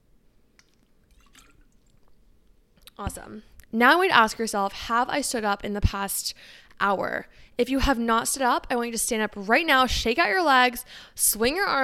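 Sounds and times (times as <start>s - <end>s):
liquid sloshing: 0.6s - 2.4s
person chugging water: 0.6s - 3.0s
speech: 3.0s - 11.8s.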